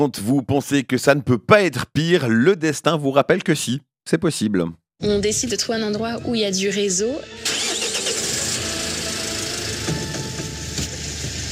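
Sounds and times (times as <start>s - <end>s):
speech: 0.0s - 7.6s
car engine struggling and failing with a broken gearbox: 8.2s - 11.5s.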